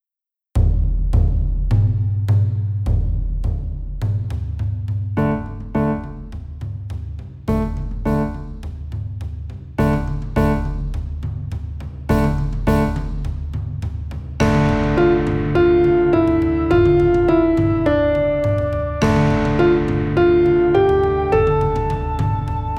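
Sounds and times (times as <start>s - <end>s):
slow forest drums: 0.6s - 22.7s.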